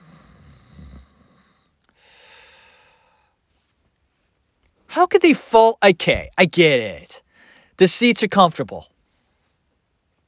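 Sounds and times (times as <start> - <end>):
voice imitating snores of a person peacefully asleep: 0.0 - 1.6
speech: 5.0 - 7.2, 7.8 - 8.9.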